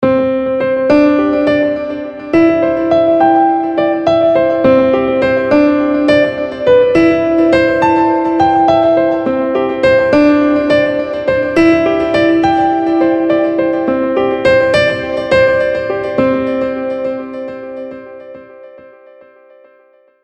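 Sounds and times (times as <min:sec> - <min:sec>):
piano with delay effect: 0:00.0 - 0:20.2.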